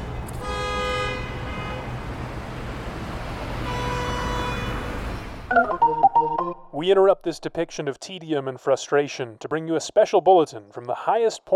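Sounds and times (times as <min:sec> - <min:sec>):
idling bumper-to-bumper holiday traffic at the intersection of I-70 and Wadsworth: 0:00.0 - 0:05.5
long blaring car horn blasts in a traffic jam: 0:00.4 - 0:02.0, 0:03.6 - 0:05.0
speech: 0:05.6 - 0:11.5.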